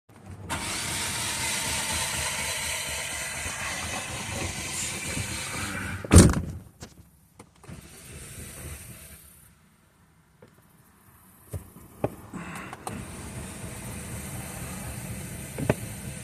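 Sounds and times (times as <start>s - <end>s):
G37 sedan engine failing to start: 0.2s - 6.3s, 7.6s - 9.5s, 12.3s - 16.2s.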